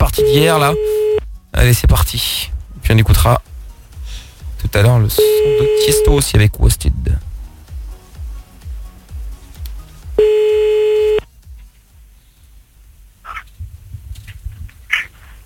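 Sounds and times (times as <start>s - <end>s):
low rumbling background: 0.0s - 15.4s
speech: 0.2s - 1.0s, 1.6s - 3.5s, 4.7s - 7.3s
electronic telephone line tone while placing a call: 0.2s - 1.2s, 5.2s - 6.2s, 10.2s - 11.2s.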